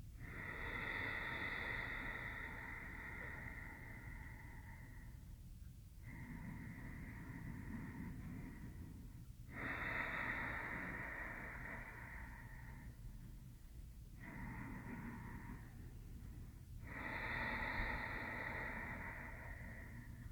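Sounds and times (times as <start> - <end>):
slow Ujjayi yoga breathing through a slightly closed throat: 0.2 - 5.4, 6.0 - 13.3, 14.1 - 20.2.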